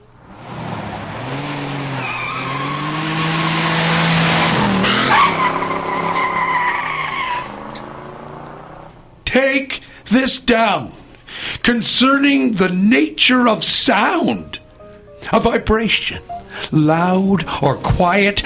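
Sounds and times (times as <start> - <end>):
taxi tires screeching to a stop: 0.0 - 9.0
taxi engine: 0.0 - 9.2
speech: 10.3 - 11.0, 11.7 - 14.6, 15.3 - 18.4.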